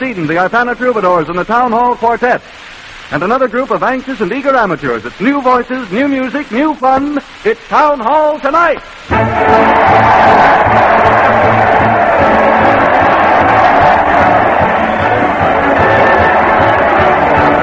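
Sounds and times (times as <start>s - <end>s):
speech: 0.0s - 11.5s
large crowd cheering and shouting at a parade: 9.1s - 17.6s.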